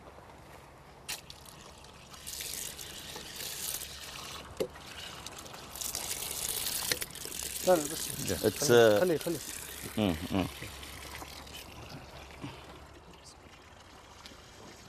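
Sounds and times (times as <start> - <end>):
drinking water running from a tap: 2.1 - 12.6
speech: 7.7 - 10.8.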